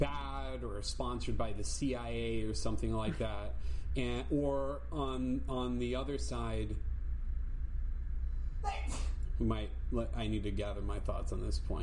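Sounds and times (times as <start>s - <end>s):
speech: 0.0s - 6.9s, 8.6s - 11.8s
low steady hum: 0.0s - 11.8s
laughter: 3.0s - 3.4s
person sneezing: 8.7s - 9.2s.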